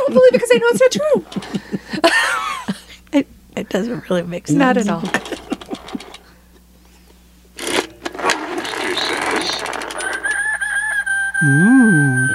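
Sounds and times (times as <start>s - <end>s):
laughter: 0.0s - 3.0s, 4.6s - 6.2s
speech: 0.1s - 2.2s, 3.7s - 5.3s
clattering, rustling noise: 5.0s - 6.3s, 7.6s - 10.3s
rooster crowing: 10.0s - 12.3s.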